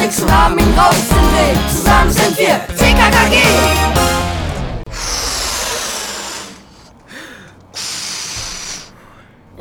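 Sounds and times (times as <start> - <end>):
speech: 0.1 - 4.1
helium gas hissing while inflating balloons: 4.9 - 9.1.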